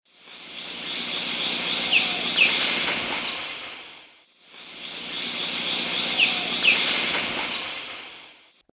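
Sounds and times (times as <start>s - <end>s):
Pachyramphus marginatus call in South American Eastern Lowlands: 0.5s - 3.7s, 4.8s - 8.1s.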